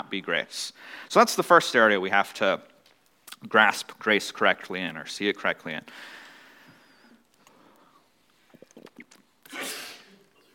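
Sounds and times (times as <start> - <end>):
speech: 0.0 - 2.7, 3.4 - 6.2
sharp sneeze: 9.4 - 10.2.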